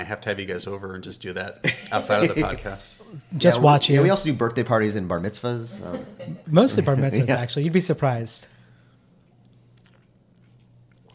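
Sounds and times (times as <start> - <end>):
speech: 0.0 - 8.6
person sipping bourbon: 8.9 - 11.1.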